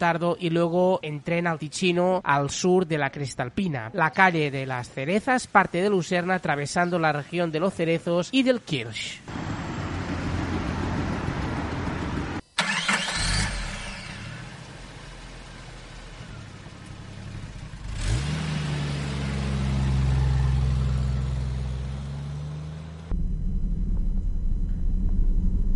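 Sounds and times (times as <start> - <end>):
speech: 0.0 - 9.6
constant noise: 0.0 - 25.7
car engine starting and driving off: 9.3 - 25.7.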